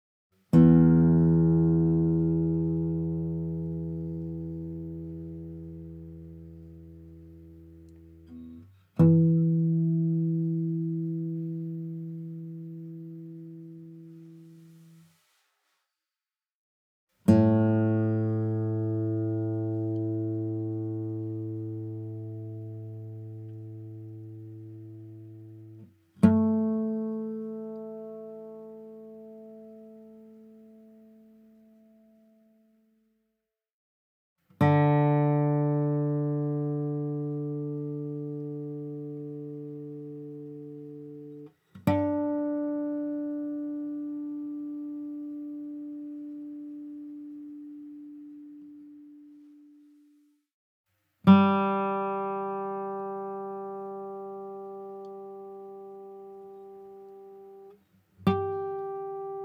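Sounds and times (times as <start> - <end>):
guitar tuning notes in standard tuning: 0.6 - 14.2, 17.3 - 32.1, 34.6 - 49.4, 51.3 - 59.4.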